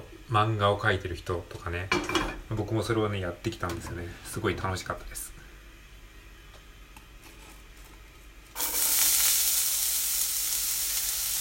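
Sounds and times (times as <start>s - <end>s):
speech: 0.3s - 5.4s
onions sizzling in a hot frying pan: 8.5s - 11.3s.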